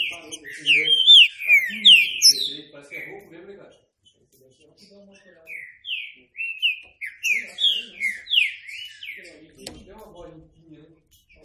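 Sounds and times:
green-winged saltator singing a rich whistled phrase of slurred falling notes: 0:00.0 - 0:03.2, 0:05.5 - 0:09.3.

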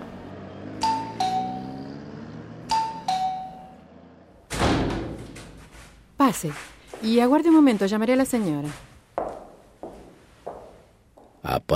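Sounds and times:
two-note doorbell chime at a house in Buenos Aires: 0:00.8 - 0:01.9, 0:02.7 - 0:03.8
heavy thud: 0:04.5 - 0:05.7
speech: 0:06.3 - 0:08.9.

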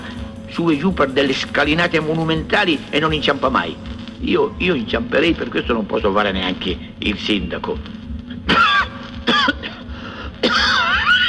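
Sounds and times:
speech: 0:00.5 - 0:08.0
person coughing harshly: 0:08.4 - 0:11.2.

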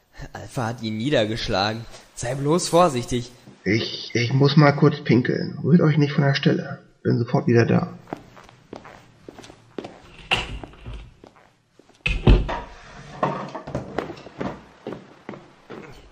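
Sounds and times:
speech: 0:00.5 - 0:08.0
footsteps: 0:08.0 - 0:16.1
chair scraping and clattering while wedging a door shut: 0:09.4 - 0:11.3, 0:12.0 - 0:14.8
knocks: 0:12.0 - 0:14.6.

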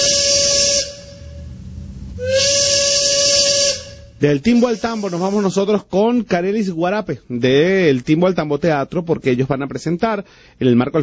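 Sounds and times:
train steam whistle blasts: 0:00.0 - 0:05.6
speech: 0:04.2 - 0:11.0.

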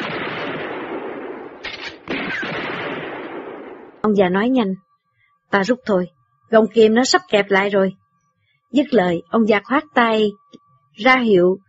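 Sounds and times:
gunfire in a night battle against enemy troops: 0:00.0 - 0:04.0
speech: 0:04.0 - 0:04.9, 0:05.5 - 0:08.0, 0:08.7 - 0:11.6.

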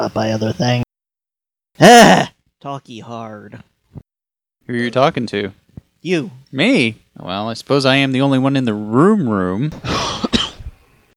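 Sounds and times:
speech: 0:00.0 - 0:00.8, 0:01.8 - 0:04.0, 0:04.7 - 0:10.2
cough: 0:10.0 - 0:10.7.

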